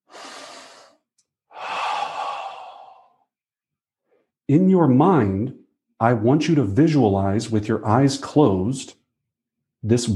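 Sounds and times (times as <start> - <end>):
deep breath: 0.0 - 3.3
speech: 4.5 - 9.0, 9.8 - 10.1.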